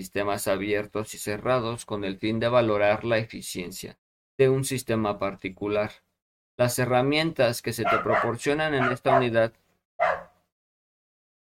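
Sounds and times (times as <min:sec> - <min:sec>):
speech: 0:00.0 - 0:06.0, 0:06.6 - 0:10.2
single short dog bark: 0:07.8 - 0:09.4, 0:10.0 - 0:10.4.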